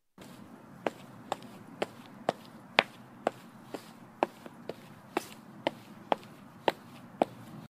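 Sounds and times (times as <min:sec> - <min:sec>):
footsteps: 0:00.2 - 0:07.7.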